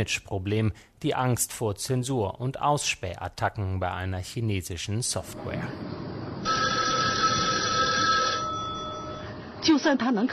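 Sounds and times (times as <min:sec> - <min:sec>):
speech: 0:00.0 - 0:06.0, 0:09.6 - 0:10.3
telephone bell ringing: 0:06.4 - 0:09.6.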